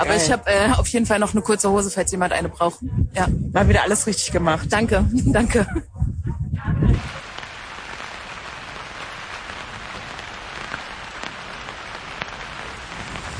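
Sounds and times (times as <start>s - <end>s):
speech: 0.0s - 6.0s
steady rain falling outdoors: 7.0s - 13.3s.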